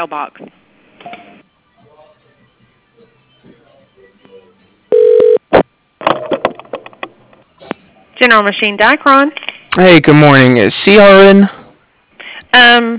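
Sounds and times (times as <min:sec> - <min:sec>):
speech: 0:00.0 - 0:01.2, 0:08.2 - 0:11.6, 0:12.5 - 0:12.9
telephone line tones as a call is transferred: 0:04.9 - 0:05.4.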